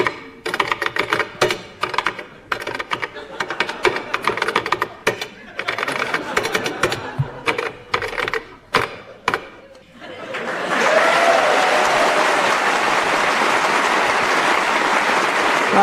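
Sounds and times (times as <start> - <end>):
typing on a keyboard: 0.0 - 9.5
laughter: 3.0 - 15.2.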